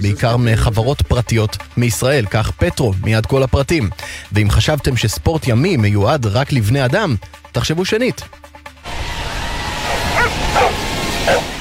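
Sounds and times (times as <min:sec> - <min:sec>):
speech: 0:00.0 - 0:08.5
dogs barking at a dog surfing contest: 0:09.9 - 0:11.5.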